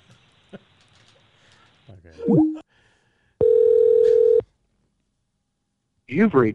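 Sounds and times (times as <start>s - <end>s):
speech: 2.2s - 2.5s, 6.2s - 6.5s
telephone line ringing on an outgoing call: 3.4s - 4.4s.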